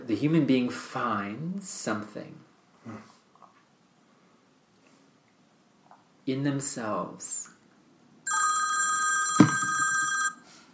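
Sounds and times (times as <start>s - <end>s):
speech: 0.1s - 3.1s, 6.3s - 7.5s
telephone ringing with a bright electronic ring: 8.3s - 10.4s.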